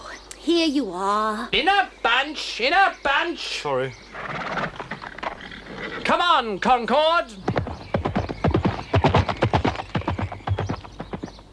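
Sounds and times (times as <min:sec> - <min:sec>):
speech: 0:00.4 - 0:04.6, 0:05.9 - 0:07.6
horse hooves galloping: 0:04.2 - 0:06.2, 0:07.1 - 0:11.5.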